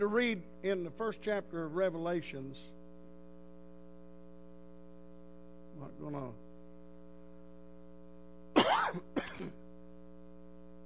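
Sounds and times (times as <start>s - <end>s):
speech: 0.0s - 2.8s, 5.8s - 6.4s
faint steady electrical hum: 0.0s - 10.8s
harsh coughs: 8.6s - 9.6s.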